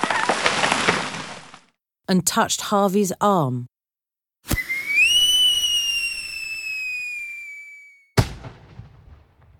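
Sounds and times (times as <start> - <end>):
crackling firework debris: 0.0 - 1.7
speech: 2.1 - 3.7
firework launching pop: 4.5 - 6.2
falling firework whistle: 4.5 - 8.2
firework exploding: 4.5 - 9.5.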